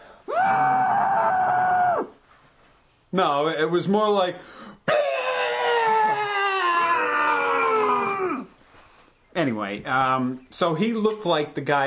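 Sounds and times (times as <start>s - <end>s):
voice imitating a man screaming: 0.3s - 2.2s, 4.9s - 8.5s
speech: 3.1s - 4.6s, 9.4s - 11.8s.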